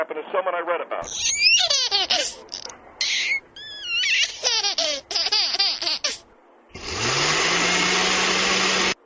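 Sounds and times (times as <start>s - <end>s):
speech: 0.0s - 2.7s
baby giggling and squealing: 1.0s - 6.2s
kitchen blender whirring: 6.8s - 9.0s.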